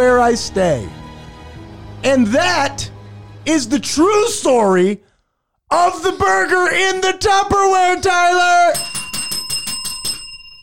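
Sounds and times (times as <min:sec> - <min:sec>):
speech: 0:00.2 - 0:01.0, 0:02.0 - 0:05.1, 0:05.7 - 0:09.0
small bell ringing: 0:08.7 - 0:10.6.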